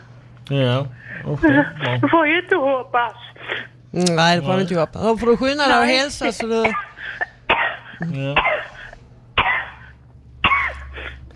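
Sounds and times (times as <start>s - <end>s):
low steady hum: 0.0s - 11.3s
speech: 0.5s - 7.3s, 8.0s - 8.5s
harsh coughs: 6.6s - 11.3s.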